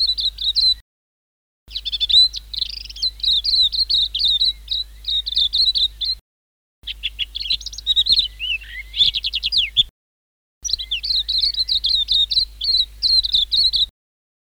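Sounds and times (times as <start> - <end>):
white-eye singing high sweet twittering song: 1.7 - 6.2, 6.8 - 9.9, 10.6 - 13.9.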